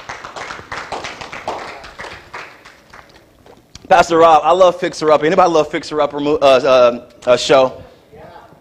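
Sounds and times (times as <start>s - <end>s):
large group applauding: 0.0s - 3.7s
speech: 3.9s - 7.8s.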